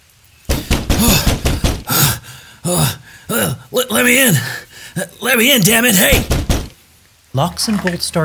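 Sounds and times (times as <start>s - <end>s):
fist pounding hard on a wooden cabin door in dense woodland at night: 0.5s - 2.0s, 6.1s - 6.8s
speech: 2.7s - 6.4s, 7.4s - 8.2s.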